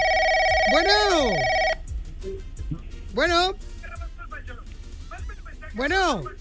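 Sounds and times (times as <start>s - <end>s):
electronic telephone ring of an incoming call: 0.0s - 1.8s
speech: 0.7s - 1.6s, 3.2s - 3.7s, 5.8s - 6.3s.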